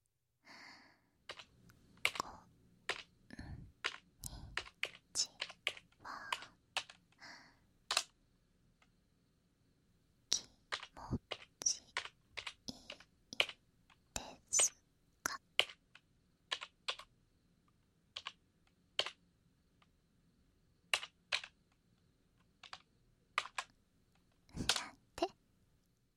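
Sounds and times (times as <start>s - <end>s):
soft breathing: 0.4s - 2.5s, 3.3s - 7.7s
mechanical keyboard keys clacking: 1.3s - 2.3s, 2.9s - 3.1s, 3.8s - 7.2s, 7.9s - 8.1s, 10.3s - 13.6s, 15.3s - 17.1s, 18.1s - 19.2s, 20.9s - 21.6s, 22.6s - 23.7s, 24.6s - 24.9s.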